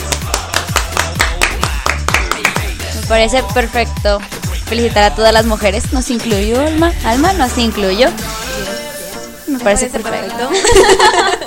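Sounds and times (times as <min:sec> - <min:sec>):
hand clapping from a small group: 0:00.0 - 0:03.0
speech: 0:03.1 - 0:08.9, 0:09.5 - 0:11.4
laughter: 0:10.4 - 0:11.4.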